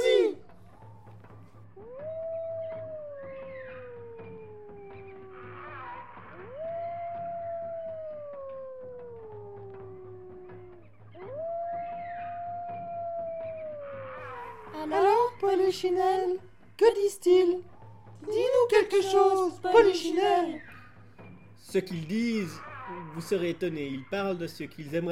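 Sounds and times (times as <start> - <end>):
wolves howling: 0.0 - 0.4, 1.8 - 16.2, 18.2 - 20.7
speech: 15.7 - 17.7, 18.3 - 20.7, 21.7 - 25.1.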